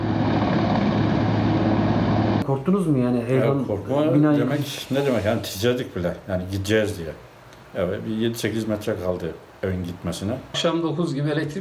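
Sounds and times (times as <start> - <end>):
gendarmerie helicopter engine drone during a flood rescue in Doğankent district: 0.0 - 2.4
speech: 2.6 - 11.5.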